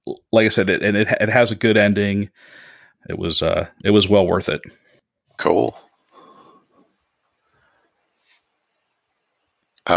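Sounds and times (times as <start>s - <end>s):
speech: 0.1s - 4.8s, 5.4s - 5.9s
crickets chirping through an open window: 5.4s - 9.9s.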